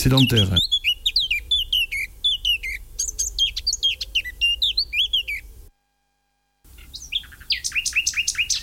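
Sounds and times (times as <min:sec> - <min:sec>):
speech: 0:00.0 - 0:00.8
common nightingale singing: 0:00.0 - 0:05.7, 0:06.7 - 0:08.6.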